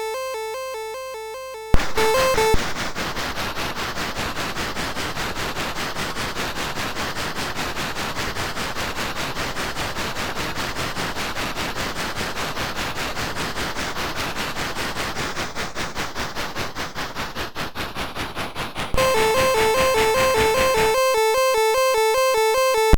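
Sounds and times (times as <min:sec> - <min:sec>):
steam engine synthesized on a MOS6581R3 sound chip: 0:00.1 - 0:22.9.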